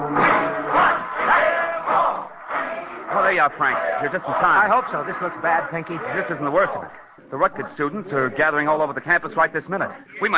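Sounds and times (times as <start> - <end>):
angry crowd of rooters shouting in front of a dressing room: 0.2 - 7.1
speech: 3.4 - 10.3.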